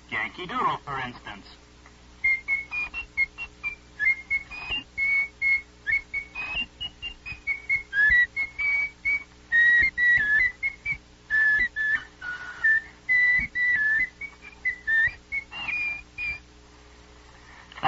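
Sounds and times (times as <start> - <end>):
speech: 0.2 - 1.7
person whistling a lively tune: 2.2 - 16.4.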